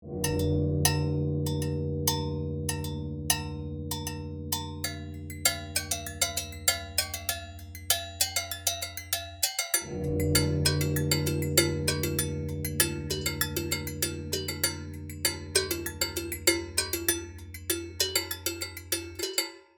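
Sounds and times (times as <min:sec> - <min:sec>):
tuned percussion bells: 0:00.2 - 0:19.5.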